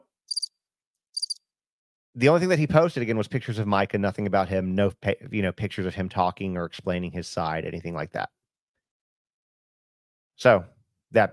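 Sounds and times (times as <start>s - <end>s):
crickets chirping: 0.3s - 0.5s, 1.2s - 1.4s
speech: 2.2s - 8.4s, 10.4s - 11.3s.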